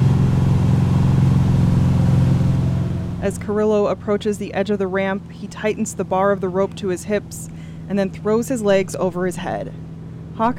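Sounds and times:
motorboat engine droning: 0.0s - 10.5s
speech: 3.2s - 9.8s, 10.4s - 10.5s.

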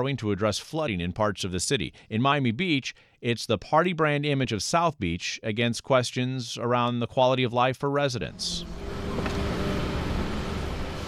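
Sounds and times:
speech: 0.0s - 9.3s
delivery trucks unloading at restaurants and bars on Ocean Drive in Miami Beach: 8.3s - 11.0s.

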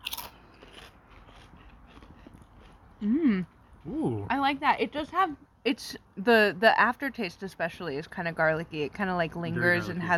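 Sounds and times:
biting into a crunchy chip with garlic dip: 0.0s - 2.8s
soft chewing of a chip with garlic dip: 0.0s - 4.2s
speech: 3.0s - 10.1s.

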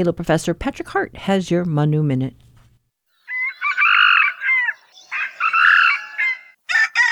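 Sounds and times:
speech: 0.0s - 2.4s
red jungle fowl crowing: 3.2s - 7.1s.

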